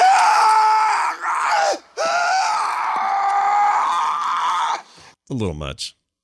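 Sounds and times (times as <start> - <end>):
man screaming in a film clip: 0.0 - 4.9
speech: 5.3 - 6.0.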